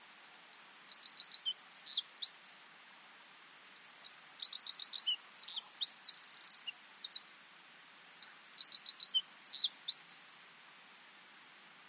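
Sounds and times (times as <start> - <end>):
steady background hiss: 0.0 - 11.8
Eurasian wren Troglodytes troglodytes song with fast high clipped notes and trills: 0.1 - 2.6, 3.6 - 7.2, 7.8 - 10.4.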